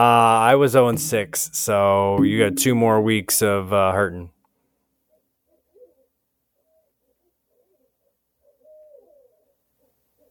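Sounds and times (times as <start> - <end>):
speech: 0.0 - 4.4
owl hooting in trees around a house: 7.5 - 9.6.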